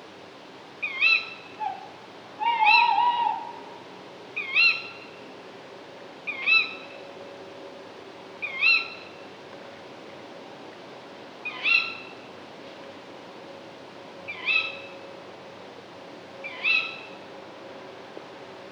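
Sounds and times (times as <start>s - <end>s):
tawny owl calling: 0.8s - 3.8s, 4.4s - 5.1s, 6.3s - 6.8s, 8.4s - 9.0s, 11.4s - 12.1s, 14.3s - 14.9s, 16.4s - 17.1s.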